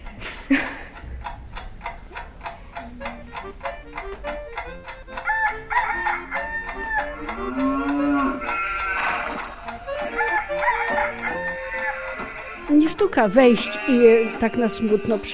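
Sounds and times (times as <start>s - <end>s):
steady clucking in farmyard: 0.0s - 15.3s
speech: 0.5s - 0.7s, 13.0s - 15.3s
farmyard livestock calls: 5.0s - 12.7s, 13.4s - 15.3s
rooster crowing in farmyard: 5.2s - 12.6s.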